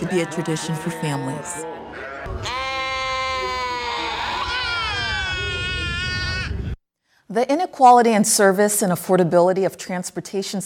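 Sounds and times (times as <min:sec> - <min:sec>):
sheep bleating at a sheep shearing festival: 0:00.0 - 0:06.5
speech: 0:00.1 - 0:02.6, 0:07.3 - 0:10.6.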